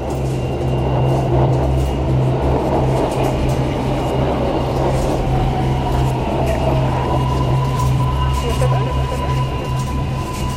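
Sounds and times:
subway train rumbling at a station platform: 0:00.0 - 0:10.5
indistinct voices murmuring: 0:03.0 - 0:10.2.

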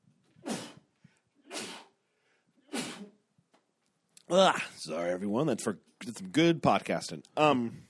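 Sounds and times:
person sneezing: 0:00.4 - 0:00.8, 0:01.4 - 0:01.9, 0:02.6 - 0:03.2
speech: 0:04.3 - 0:07.8.

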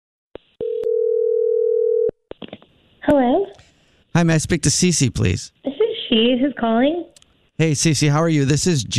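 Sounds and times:
steady loud telephone dial tone: 0:00.6 - 0:02.1
speech: 0:04.2 - 0:08.9.

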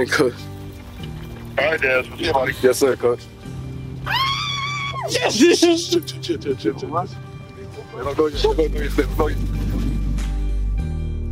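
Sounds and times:
speech: 0:00.0 - 0:00.5, 0:01.6 - 0:03.4, 0:04.0 - 0:04.3, 0:05.0 - 0:07.2, 0:08.0 - 0:09.6
low car engine rumble: 0:00.0 - 0:04.2, 0:04.9 - 0:11.0
excited friends shouting and screaming getting out of a car: 0:04.0 - 0:05.9.

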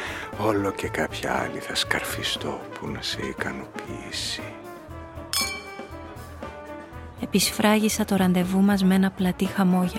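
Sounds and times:
speech: 0:00.4 - 0:04.6, 0:07.3 - 0:09.9
emptied glass set down on a table with a ringing clink: 0:05.3 - 0:06.1.

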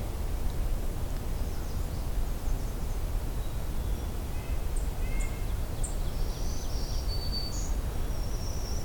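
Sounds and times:
steady wash of noise: 0:00.0 - 0:08.8
black-throated green warbler singing thin buzzy high phrases: 0:03.4 - 0:08.8.

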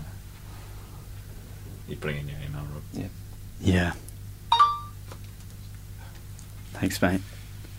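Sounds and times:
low hum: 0:00.0 - 0:07.7
speech: 0:01.9 - 0:04.1, 0:06.8 - 0:07.4
two-note electronic phone notification chime: 0:04.5 - 0:05.0.

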